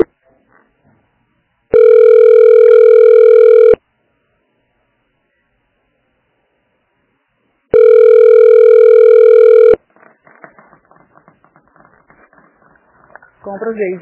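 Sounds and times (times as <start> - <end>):
telephone ringback tone during a call transfer: 1.7 - 3.8, 7.7 - 9.8
speech: 13.5 - 14.0.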